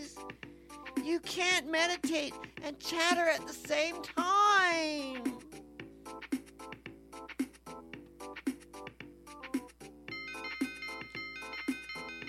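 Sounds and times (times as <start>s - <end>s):
speech: 1.1s - 5.4s
melodic electronic doorbell chime playing a tune: 10.1s - 12.2s.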